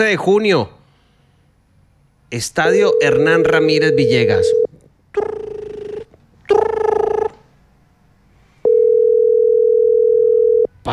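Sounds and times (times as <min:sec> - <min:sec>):
speech: 0:00.0 - 0:00.8, 0:02.3 - 0:05.4
telephone ringback tones while a phone call is being placed: 0:02.8 - 0:04.7, 0:08.6 - 0:10.7.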